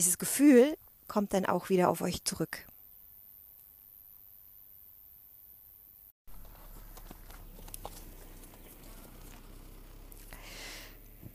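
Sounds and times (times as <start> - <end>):
speech: 0.0 - 2.7
steady outdoor noise: 0.0 - 11.3
horse hooves clopping at a walking pace: 6.3 - 11.3.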